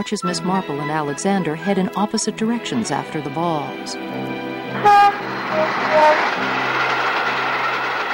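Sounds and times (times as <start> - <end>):
speech: 0.0 - 6.6
train rumbling past overhead: 0.0 - 8.1
short sharp toot of train horn: 4.7 - 6.4.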